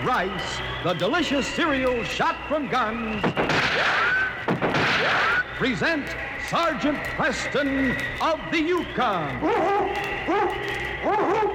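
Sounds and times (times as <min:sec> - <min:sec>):
speech: 0:00.0 - 0:11.5
sled dog barking: 0:09.4 - 0:11.5.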